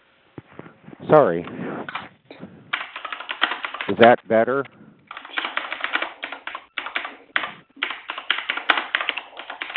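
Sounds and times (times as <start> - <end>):
speech: 1.0 - 2.4, 3.9 - 4.8
rapid typing on a computer keyboard during an online meeting call: 2.7 - 4.1, 5.1 - 9.7.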